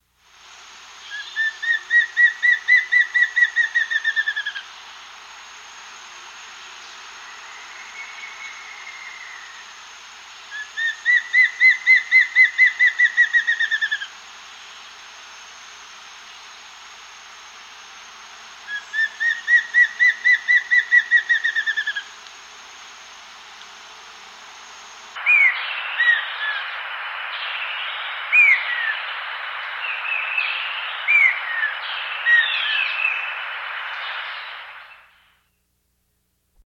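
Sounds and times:
streak-crowned antvireo calling in South America: 1.0 - 4.8, 10.5 - 14.9, 18.6 - 22.2, 24.5 - 33.4.

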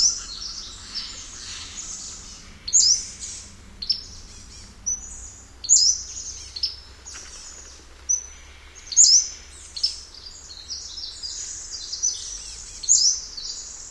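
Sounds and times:
Pacific-slope flycatcher singing in North America: 0.0 - 13.8.

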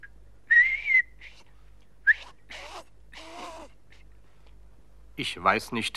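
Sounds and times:
person whistling a wobbly breathy tune: 0.5 - 1.4
speech: 5.2 - 5.9.

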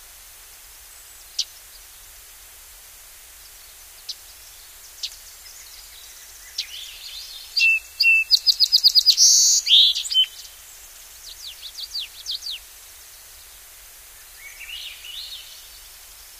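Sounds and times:
song sparrow song: 3.4 - 16.3.

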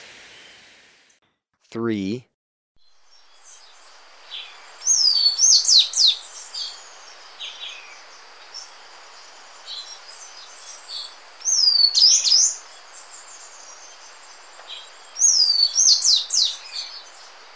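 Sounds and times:
speech: 1.7 - 2.3
Tricolored brush-finch song in Ecuador: 4.4 - 8.0, 10.7 - 12.6, 14.8 - 17.0.

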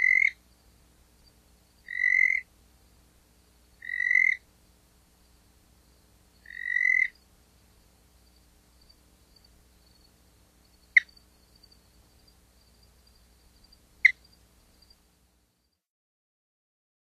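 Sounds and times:
spotted chirping frog calling: 0.0 - 0.5, 1.8 - 2.5, 3.8 - 4.4, 6.4 - 7.2, 10.7 - 11.8, 12.7 - 14.9.

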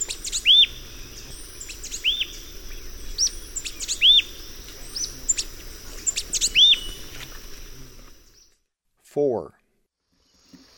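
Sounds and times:
Thick-billed euphonia rapid high chirps and whistled notes in the eastern lowlands of South America: 0.0 - 0.8, 3.1 - 4.4, 5.0 - 7.0
speech: 9.2 - 9.6.

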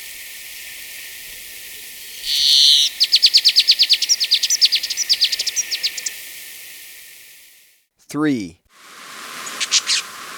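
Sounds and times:
Plumbeous Sierra-Finch calls in Ecuador: 2.1 - 6.2, 9.4 - 10.2
speech: 8.1 - 8.6.

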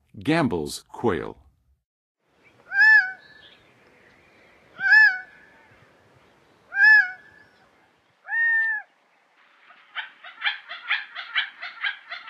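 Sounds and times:
Gambel's quail singing: 2.4 - 6.0, 6.6 - 8.9, 9.7 - 12.2.

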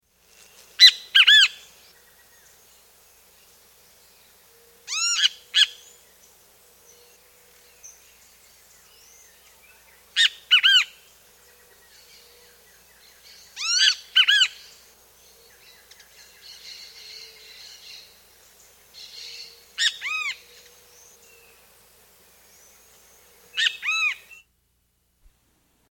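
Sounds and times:
Great Kiskadee calling in South America: 0.5 - 2.6, 4.4 - 6.1, 6.8 - 18.2, 18.9 - 21.7, 22.4 - 24.5.

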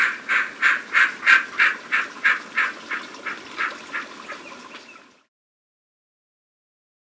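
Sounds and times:
Imperial snipe giving rasping nasal notes in Ecuador: 0.0 - 5.0.

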